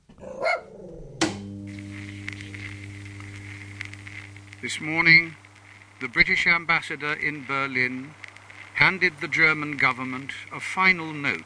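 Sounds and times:
corgi barking: 0.2s - 0.7s
steady droning hum: 1.2s - 11.4s
speech: 4.6s - 5.4s, 6.0s - 8.2s, 8.8s - 11.4s.

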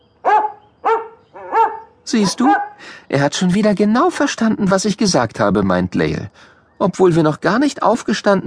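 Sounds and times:
dog giving excited high-pitched yelping whines: 0.2s - 2.8s
speech: 2.1s - 8.4s.

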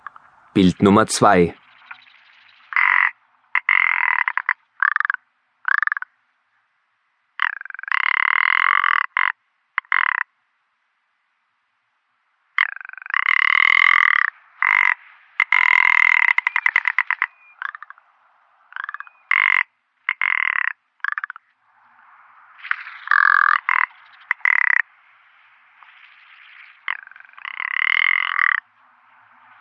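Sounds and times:
speech: 0.6s - 1.6s
rock ptarmigan croaking rattle calls: 1.7s - 6.1s, 7.4s - 10.3s, 12.6s - 18.0s, 18.7s - 21.5s, 22.6s - 24.9s, 25.8s - 28.7s.

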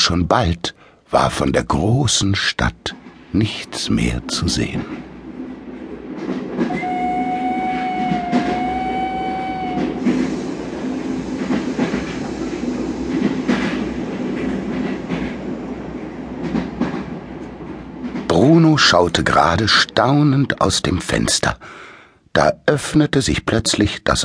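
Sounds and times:
speech: 0.1s - 5.1s, 6.2s - 6.8s, 18.4s - 21.8s, 22.4s - 24.2s
train wheels rumbling on tracks: 1.4s - 21.2s
rail joints clacking: 2.8s - 20.8s
train whistle: 6.7s - 10.7s.

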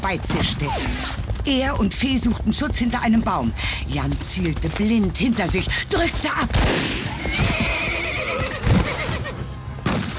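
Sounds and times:
hoof thuds and scuffles: 0.0s - 7.8s
speech: 0.0s - 7.8s
horse shot through the neck whinnying shrilly as it falls: 7.1s - 9.4s.

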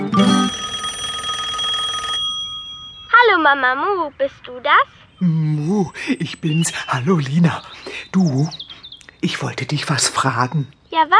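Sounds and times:
telephone bell ringing in a metallic burst: 0.0s - 3.6s
speech: 3.5s - 11.1s.

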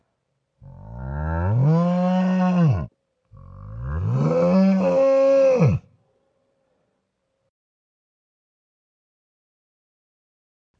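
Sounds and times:
cow mooing: 0.6s - 5.9s.

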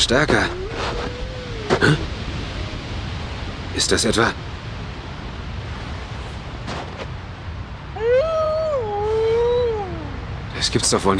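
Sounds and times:
speech: 0.0s - 0.9s, 1.8s - 2.1s, 3.8s - 4.4s, 10.6s - 11.1s
windy hiss in cold snowy weather: 0.0s - 11.1s
wolf howling: 0.3s - 3.1s, 8.0s - 10.3s.

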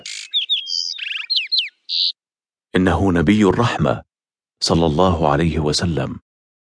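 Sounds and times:
small mother bird at the nest chirping and twittering: 0.0s - 2.2s
speech: 2.8s - 6.2s.

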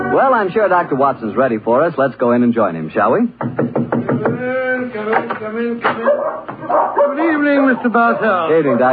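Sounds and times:
speech: 0.1s - 8.9s
dogs barking and yipping excitedly: 6.0s - 8.9s.

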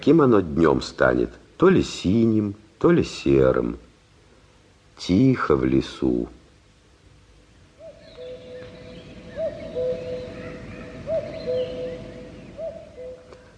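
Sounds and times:
speech: 0.0s - 3.9s, 5.0s - 6.4s
soft constant hum: 0.0s - 13.5s
common cuckoo calling in a quiet forest during a spring cold spell: 7.8s - 13.5s.

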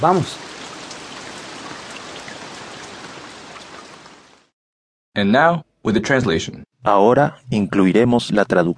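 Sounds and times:
speech: 0.0s - 0.5s, 5.2s - 8.7s
steady rain pouring: 0.0s - 4.5s.

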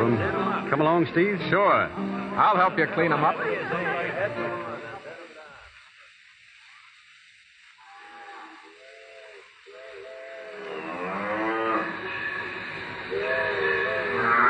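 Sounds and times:
steady hissing rumbling background: 0.0s - 14.4s
speech: 0.2s - 4.9s
laughter: 2.5s - 5.7s
cattle lowing on railway tracks: 7.8s - 14.4s.

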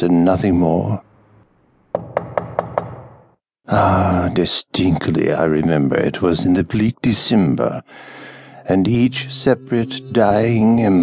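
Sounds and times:
speech: 0.0s - 1.1s, 3.7s - 11.0s
gentle tapping on a wooden chamber door: 2.0s - 3.2s.

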